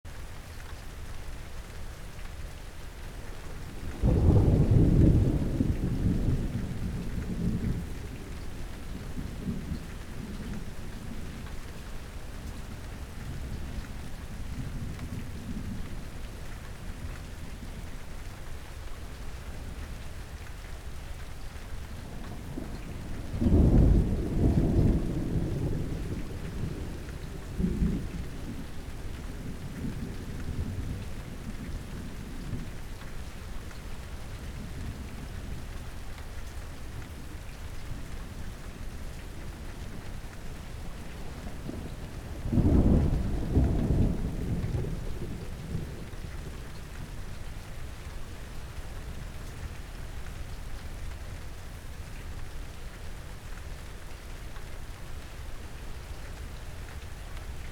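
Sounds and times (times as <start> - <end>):
thunder: 3.9 - 10.8, 22.2 - 31.8, 40.9 - 46.7.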